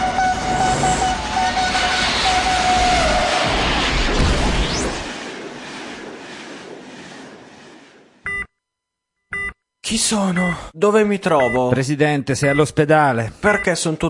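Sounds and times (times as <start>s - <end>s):
train rushing past through a station: 0.0s - 8.4s
electronic beep: 8.2s - 8.6s, 9.2s - 9.6s, 11.4s - 11.7s
speech: 9.9s - 14.0s.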